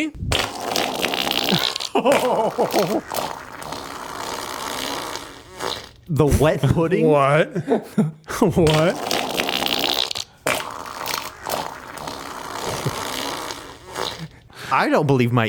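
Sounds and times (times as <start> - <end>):
speech: 0.0 - 0.8, 2.0 - 3.4, 6.1 - 9.2, 14.7 - 15.4
wet foamy bubbly fart: 0.2 - 6.7, 8.6 - 14.4
laughter: 1.5 - 3.1, 6.6 - 8.5, 12.6 - 13.1.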